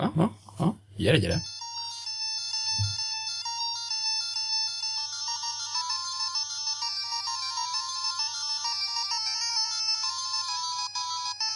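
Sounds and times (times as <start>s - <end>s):
speech: 0.2s - 0.4s, 1.0s - 1.5s
two-channel chiptune melody from a hacked Game Boy Color with short echo: 1.3s - 11.5s.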